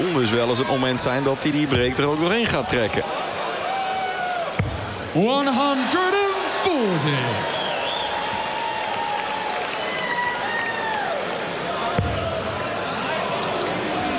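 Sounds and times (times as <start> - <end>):
large indoor darts crowd at a final roaring and cheering: 0.0 - 14.1
speech: 0.2 - 3.4, 5.2 - 7.6
crowd whistles: 7.5 - 8.4, 9.6 - 11.2.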